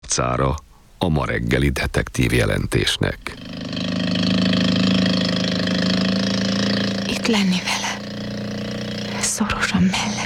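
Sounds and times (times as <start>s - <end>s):
speech: 0.2s - 3.6s, 7.3s - 7.8s, 9.4s - 10.2s
small motorboat engine running as the boat speeds across the sea: 3.4s - 9.4s.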